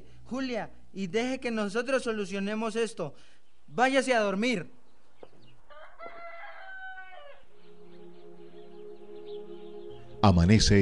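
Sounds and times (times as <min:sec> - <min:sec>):
speech: 0:00.3 - 0:04.8, 0:10.2 - 0:10.8
rooster crowing: 0:05.5 - 0:08.4.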